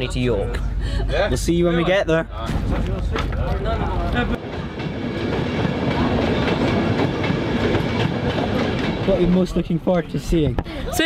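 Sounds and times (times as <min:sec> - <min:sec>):
speech: 0:00.0 - 0:04.4, 0:09.1 - 0:11.0
passenger train running on rails heard from inside the carriage: 0:02.3 - 0:10.6
train wheels clickety-clack: 0:04.2 - 0:10.5.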